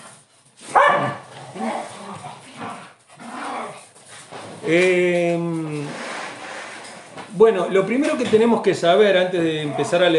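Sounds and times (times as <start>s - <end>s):
dogs barking: 0.7s - 1.3s
speech: 4.7s - 5.5s, 7.4s - 10.1s.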